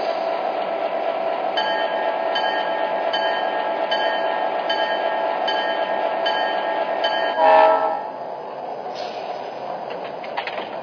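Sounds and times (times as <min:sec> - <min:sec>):
passenger train rolling in on the track with a heavy rumble: 0:00.0 - 0:10.8
passenger train horn blowing: 0:07.3 - 0:08.2.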